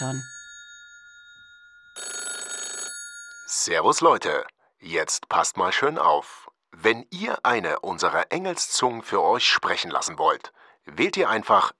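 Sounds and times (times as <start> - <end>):
speech: 0.0 - 0.4, 3.5 - 11.7
telephone bell ringing: 0.0 - 3.7.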